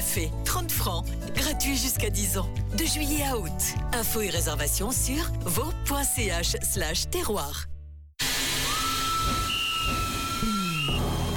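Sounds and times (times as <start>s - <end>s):
speech: 0.2s - 7.7s
steam locomotive hissing at a large railway park in Switzerland: 8.2s - 11.3s.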